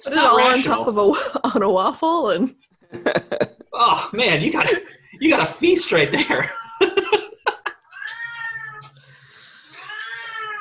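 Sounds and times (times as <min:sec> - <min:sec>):
speech: 0:00.0 - 0:07.1
laughter: 0:02.9 - 0:04.0, 0:06.1 - 0:07.9
cat yowling loudly in long drawn-out wails: 0:06.4 - 0:07.1, 0:07.9 - 0:08.9, 0:09.7 - 0:10.5.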